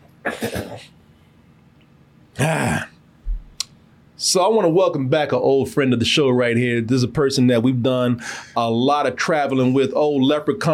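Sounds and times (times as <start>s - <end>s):
man clearing throat: 0.2s - 1.0s, 2.4s - 3.0s
speech: 0.2s - 1.0s, 2.4s - 2.8s, 4.3s - 10.7s.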